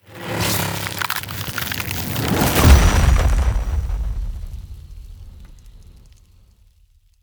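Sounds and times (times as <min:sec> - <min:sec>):
ice spell transformation giant growth effect: 0:00.1 - 0:04.2.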